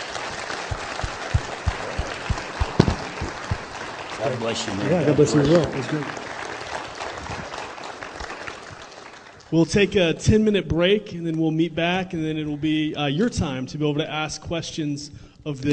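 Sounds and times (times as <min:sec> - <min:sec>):
audience applause: 0:00.0 - 0:09.6
speech: 0:04.2 - 0:06.2, 0:09.5 - 0:15.7.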